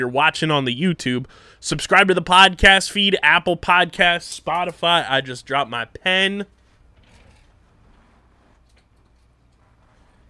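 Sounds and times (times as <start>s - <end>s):
speech: 0.0s - 6.6s
chair scraping and creaking across the floor: 6.9s - 10.2s.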